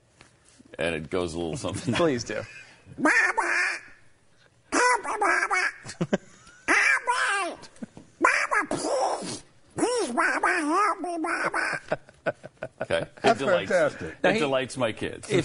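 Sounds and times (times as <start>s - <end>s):
speech: 0.8s - 3.4s, 6.0s - 6.2s, 12.9s - 15.4s
person imitating a duck quacking in distress: 3.0s - 4.0s, 4.7s - 6.0s, 6.7s - 12.0s.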